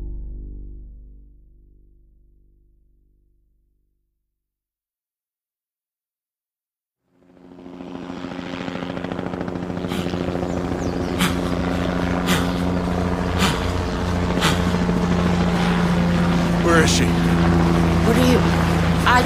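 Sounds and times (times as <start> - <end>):
Highway Patrol helicopter flying overhead: 7.1 - 19.2.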